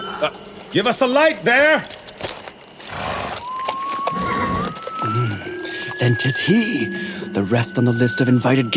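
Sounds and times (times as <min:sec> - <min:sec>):
speech: 0:00.2 - 0:02.0, 0:06.1 - 0:08.7
horse hooves clip-clopping: 0:01.8 - 0:06.2.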